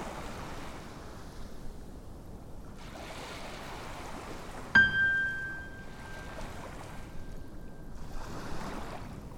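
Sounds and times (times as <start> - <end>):
ocean waves on a beach: 0.0 - 9.3
metallic chime ringing as a meditation cue: 4.8 - 7.9.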